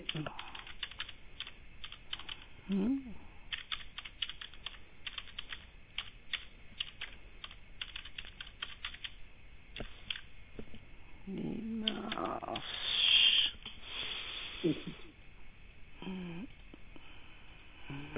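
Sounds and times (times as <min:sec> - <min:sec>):
speech: 0:00.0 - 0:00.4, 0:02.7 - 0:03.2
typing on a computer keyboard: 0:00.1 - 0:02.5, 0:03.5 - 0:09.2
person murmuring: 0:02.6 - 0:03.3, 0:11.2 - 0:13.6, 0:14.5 - 0:15.2, 0:16.0 - 0:16.6, 0:17.8 - 0:18.1.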